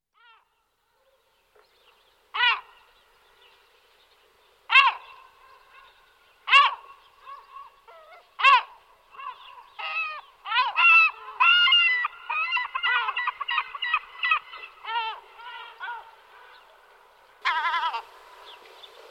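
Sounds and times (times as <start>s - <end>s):
European herring gull Larus argentatus sharp loud yelps: 2.4s - 2.7s, 4.7s - 5.9s, 6.5s - 16.2s, 17.4s - 18.1s
European herring gull Larus argentatus laughing nasal calls: 6.5s - 16.2s, 17.4s - 18.1s.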